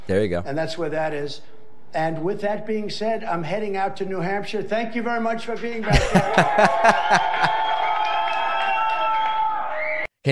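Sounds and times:
speech: 0:00.1 - 0:07.6
laughter: 0:05.8 - 0:07.8
large crowd of fans cheering and shouting outside a courthouse: 0:05.9 - 0:10.1.

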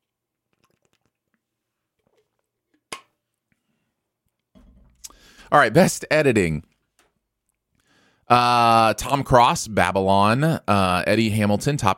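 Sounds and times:
sipping and swallowing water: 0:00.4 - 0:02.3
wet mouth clicks: 0:00.5 - 0:01.4
speech: 0:05.5 - 0:06.7, 0:08.3 - 0:11.9.

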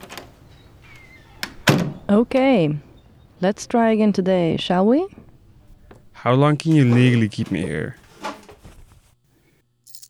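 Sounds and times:
door handle rattle: 0:00.0 - 0:03.4, 0:05.1 - 0:06.2
door latch clicks: 0:00.0 - 0:03.6, 0:05.1 - 0:06.2
door hinges creaking: 0:00.0 - 0:08.5
speech: 0:02.1 - 0:05.2, 0:06.2 - 0:08.0.

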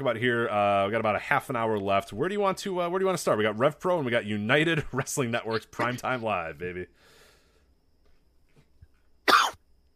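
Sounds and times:
speech: 0:00.0 - 0:07.2
person coughing: 0:09.3 - 0:09.6.

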